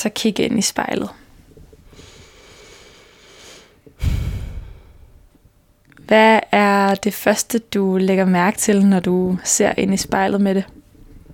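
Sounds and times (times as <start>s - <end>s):
speech: 0.0s - 1.2s, 6.1s - 10.8s
deep breaths taken during a guided exercise: 1.8s - 5.4s.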